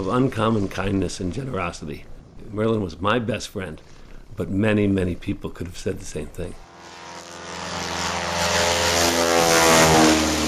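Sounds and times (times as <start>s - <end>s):
speech: 0.0s - 6.6s
vintage de Havilland Beaver float plane piston engine and propeller droning overhead: 6.6s - 10.4s.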